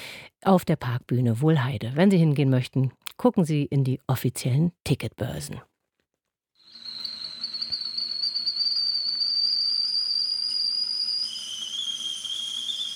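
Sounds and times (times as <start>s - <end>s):
speech: 0.4s - 5.7s
whistling tea kettle: 6.6s - 12.9s.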